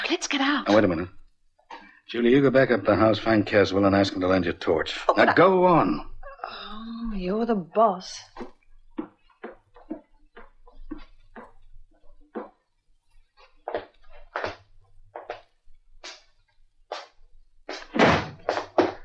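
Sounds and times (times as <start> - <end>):
speech: 0.1 - 1.2, 2.1 - 8.6
front door slamming shut: 17.9 - 18.5.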